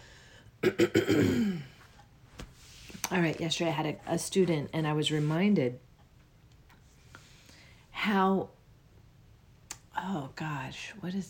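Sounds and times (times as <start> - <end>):
person clearing throat: 0.6 - 1.8
speech: 3.1 - 5.9, 8.0 - 8.6, 10.0 - 11.2.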